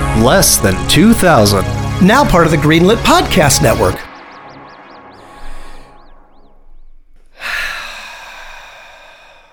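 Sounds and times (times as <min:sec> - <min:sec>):
speech: 0:00.2 - 0:04.1
deep breathing in and out: 0:05.2 - 0:06.2, 0:07.3 - 0:09.5.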